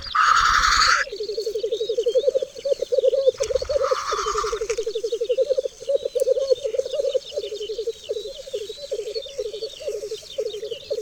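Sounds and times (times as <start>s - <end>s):
black grouse bubbling: 0.0s - 1.1s, 3.2s - 5.6s
faint twittering birds: 0.0s - 11.0s.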